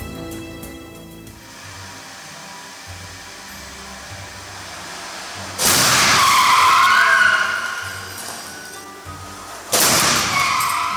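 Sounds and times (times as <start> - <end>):
long screeching skid of sliding tires: 1.4 - 10.9
car crash impact with crunching metal from Volvo XC40 crash test: 4.5 - 8.8, 9.5 - 10.9.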